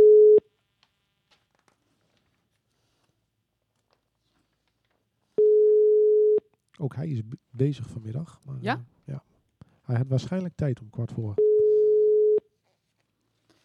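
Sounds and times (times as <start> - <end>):
telephone ringback tone while a call is placed: 0.0 - 0.4, 5.4 - 6.4, 11.4 - 12.4
speech: 6.8 - 9.3, 9.9 - 11.6.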